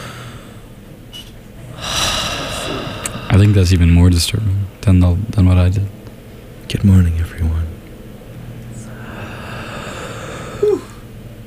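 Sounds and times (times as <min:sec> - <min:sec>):
person breathing slowly into a microphone: 0:00.0 - 0:00.7, 0:01.7 - 0:04.7, 0:08.8 - 0:11.1
speech: 0:03.3 - 0:06.0, 0:06.7 - 0:07.6.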